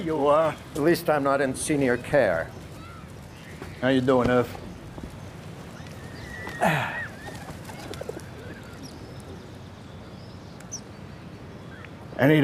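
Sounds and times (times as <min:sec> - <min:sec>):
speech: 0:00.0 - 0:02.6, 0:03.8 - 0:04.6, 0:06.6 - 0:07.0, 0:12.2 - 0:12.4
pigeon wings fluttering: 0:00.6 - 0:09.6
pigeon cooing: 0:06.0 - 0:09.5.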